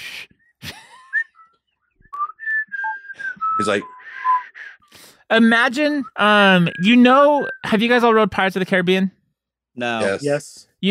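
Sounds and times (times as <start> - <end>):
person whistling a bluegrass folk-style melody: 0.4 - 4.9, 6.0 - 7.7
speech: 3.6 - 4.0, 5.3 - 9.2, 9.8 - 10.8.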